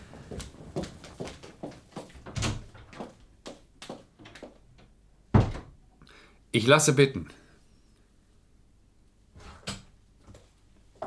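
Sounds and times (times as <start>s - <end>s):
door opening and closing: 2.2s - 3.1s, 4.2s - 5.8s
speech: 6.6s - 7.4s.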